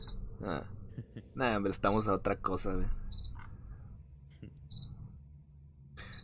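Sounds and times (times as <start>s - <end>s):
cricket chirping in a room: 0.0s - 0.2s, 3.0s - 3.4s, 4.7s - 5.0s, 6.0s - 6.2s
low steady room hum: 0.0s - 6.2s
speech: 0.4s - 3.3s
laughter: 1.0s - 1.4s.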